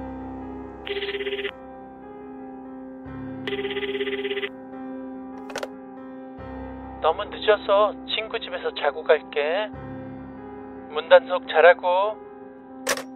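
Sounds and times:
phone ringtone with a bright buzzing warble: 0.9 - 1.5, 3.5 - 4.5
brief sharp click: 5.4 - 5.7, 12.9 - 13.1
speech: 7.0 - 9.8, 10.9 - 12.2.

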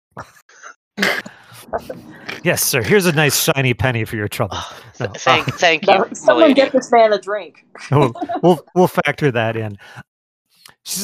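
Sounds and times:
person performing an acted coughing fit: 1.0 - 2.6, 7.9 - 8.7
speech: 1.0 - 10.1, 10.8 - 11.0
laughter: 1.4 - 10.0.

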